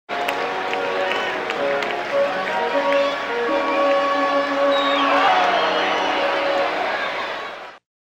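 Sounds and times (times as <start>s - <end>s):
hockey music: 0.1s - 7.8s
applause: 0.2s - 4.0s, 4.7s - 6.7s.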